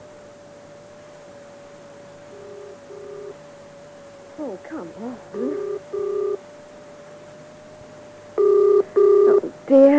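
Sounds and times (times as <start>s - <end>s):
outgoing call telephone ringback tone: 2.3s - 3.4s, 5.3s - 6.4s, 8.4s - 9.5s
speech: 4.4s - 6.4s, 9.7s - 9.9s.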